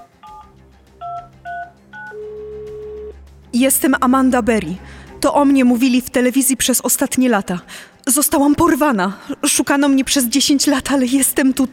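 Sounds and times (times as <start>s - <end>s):
phone keypad beeps dialing 911: 0.0s - 3.1s
speech: 3.6s - 11.7s.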